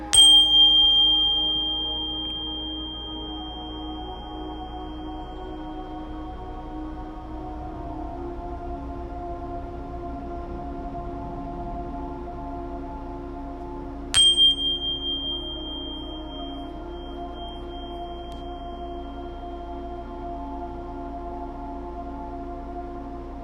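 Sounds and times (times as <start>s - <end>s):
low steady drone: 0.0s - 23.4s
bell ringing: 0.1s - 5.8s, 14.2s - 19.9s.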